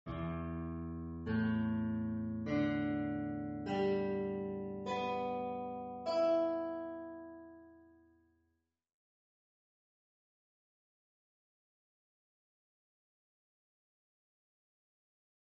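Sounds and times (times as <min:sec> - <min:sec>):
guitar tuning: 0:00.1 - 0:08.3.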